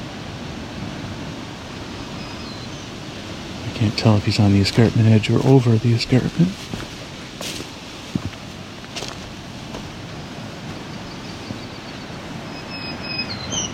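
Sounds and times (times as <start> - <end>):
steady wind rumble: 0.0 - 13.7
black-throated green warbler singing faintly: 2.1 - 3.0, 10.9 - 13.7
speech: 3.7 - 6.9.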